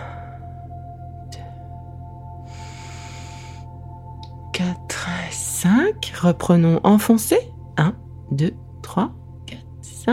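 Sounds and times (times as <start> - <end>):
low constant hum: 0.0 - 10.1
long exhale during a self-massage exercise: 2.4 - 3.7
speech: 5.6 - 9.2.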